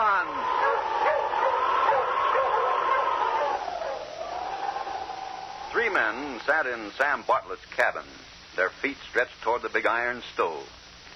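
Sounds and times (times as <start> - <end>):
continuous noise: 0.0 - 11.1
dog barking and yipping: 0.3 - 5.4
speech: 6.0 - 10.8.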